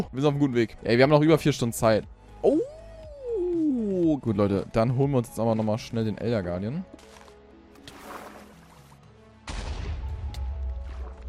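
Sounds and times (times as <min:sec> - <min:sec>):
speech: 0:00.2 - 0:02.6, 0:04.2 - 0:07.0
video game TNT explosions underwater: 0:09.5 - 0:11.2.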